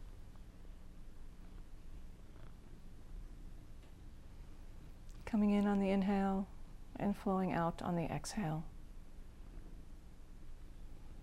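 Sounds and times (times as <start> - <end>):
cat purring: 1.2 - 3.6
speech: 5.3 - 8.7.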